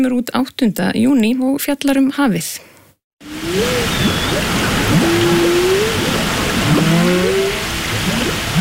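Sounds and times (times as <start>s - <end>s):
speech: 0.0s - 4.7s
whale calls recorded underwater in Bakkaflói bay, northeast Iceland: 3.3s - 8.5s.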